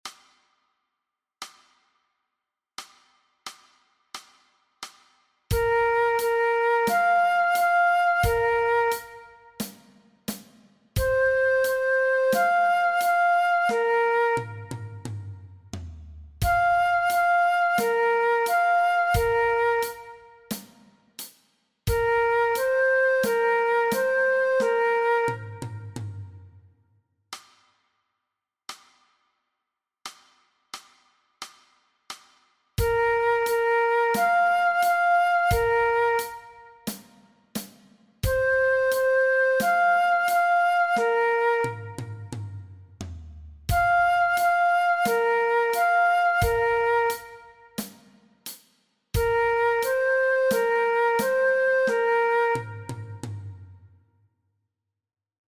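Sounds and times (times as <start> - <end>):
transverse flute play-along track: 5.5 - 9.8, 11.0 - 15.5, 16.4 - 20.7, 21.9 - 26.6, 32.8 - 37.1, 38.2 - 42.7, 43.7 - 47.9, 49.2 - 53.7.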